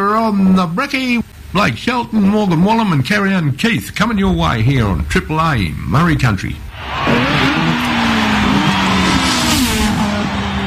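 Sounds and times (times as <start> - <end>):
speech: 0.3 - 7.8
Formula One race car engine revving: 6.7 - 10.6.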